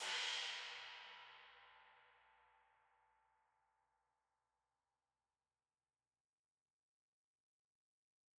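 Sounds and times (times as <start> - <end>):
analog recorded crash cymbal: 0.0 - 2.8.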